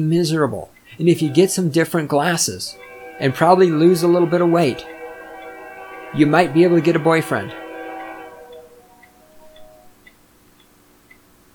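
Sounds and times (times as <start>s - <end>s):
speech: 0.0s - 5.0s, 6.1s - 7.6s
train passing: 1.0s - 10.0s
low tonal hum: 2.6s - 10.0s.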